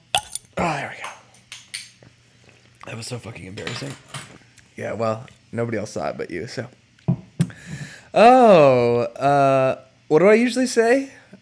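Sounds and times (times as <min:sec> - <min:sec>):
beer can cracking open: 0:00.0 - 0:02.0
clinking: 0:00.1 - 0:02.0
speech: 0:02.9 - 0:04.2, 0:04.8 - 0:06.8, 0:08.1 - 0:11.2.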